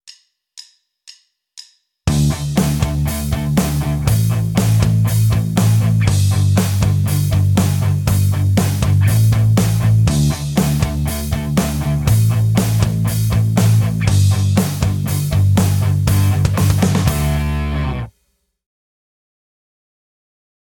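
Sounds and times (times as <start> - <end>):
guitar tapped harmonics: 2.1 - 18.1.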